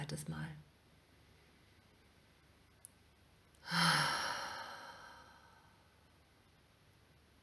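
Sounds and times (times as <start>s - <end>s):
speech: 0.0s - 0.6s
deep breath in through the nose and out through the mouth in a guided exercise: 3.6s - 6.1s.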